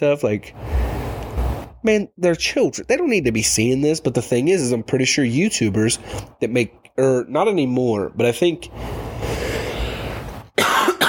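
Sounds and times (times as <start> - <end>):
speech: 0.0 - 0.9, 1.8 - 9.1
rough breathy noise: 0.5 - 1.7, 6.0 - 6.4, 8.6 - 10.6
person coughing: 10.6 - 11.0.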